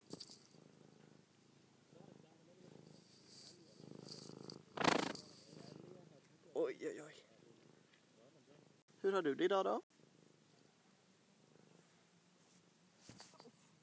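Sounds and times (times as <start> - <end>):
affectionate cat purring against the microphone at a lake bathing place: 0.1 - 6.3, 7.1 - 8.8, 10.0 - 13.7
cat fur and tail brushing the microphone: 3.0 - 5.7
speech: 6.8 - 7.3, 9.0 - 9.9.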